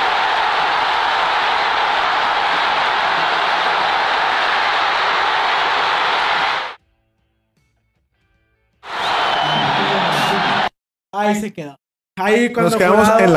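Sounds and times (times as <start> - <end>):
stadium crowd roaring during a football match: 0.0 - 6.8, 8.8 - 10.8
speech: 11.2 - 13.3.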